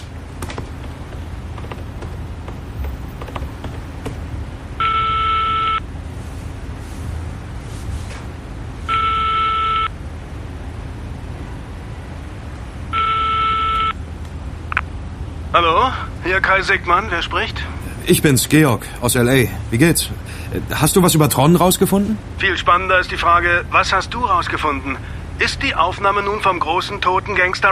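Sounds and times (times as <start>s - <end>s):
constant low hum: 0.0s - 26.3s
telephone ringing tones: 4.8s - 5.9s, 8.9s - 10.0s, 12.9s - 14.0s
speech: 15.6s - 27.7s.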